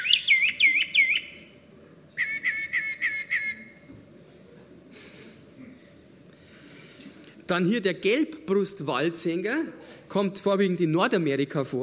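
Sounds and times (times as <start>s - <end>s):
Northern Mockingbird singing whistled notes: 0.0s - 1.5s, 2.2s - 3.8s
speech: 7.5s - 11.8s.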